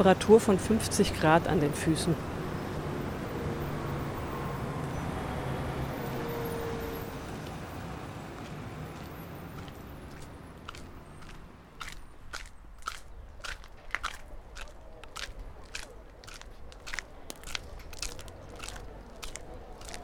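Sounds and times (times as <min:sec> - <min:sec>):
speech: 0:00.0 - 0:02.3
cars rumbling past on a street: 0:00.0 - 0:20.0
steady roar of street traffic: 0:00.0 - 0:20.0
crunching and crackling from biting and chewing chocolate-coated baklava: 0:09.6 - 0:20.0.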